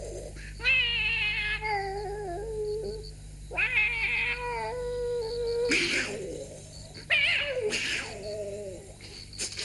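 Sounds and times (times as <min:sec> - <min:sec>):
cat meowing and yowling late at night: 0:00.6 - 0:05.7, 0:07.1 - 0:08.8.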